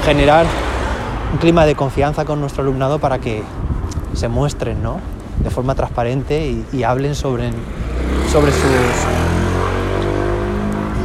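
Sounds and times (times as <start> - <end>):
speech: 0.0 - 0.7, 1.3 - 9.4
motorcycles passing: 0.0 - 2.6, 7.0 - 11.0
cars passing: 0.0 - 5.4, 6.0 - 11.0.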